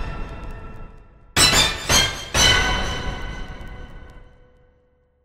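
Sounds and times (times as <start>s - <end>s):
orchestra hit: 1.4s - 3.9s.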